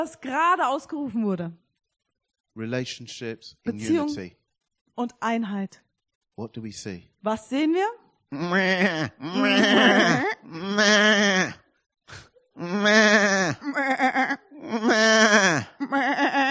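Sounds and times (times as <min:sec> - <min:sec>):
speech: 0:00.0 - 0:01.6, 0:02.6 - 0:04.4, 0:05.0 - 0:05.8, 0:06.4 - 0:16.4
sheep bleating: 0:08.3 - 0:11.6, 0:12.6 - 0:16.4.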